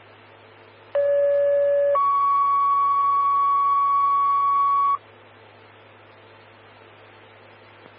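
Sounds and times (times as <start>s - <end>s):
two-tone fire dispatch paging alert tones: 1.0s - 5.0s.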